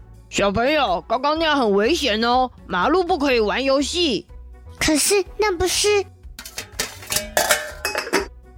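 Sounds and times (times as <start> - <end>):
speech: 0.3 - 6.2
pots and pans clattering and crashing together: 6.4 - 8.3.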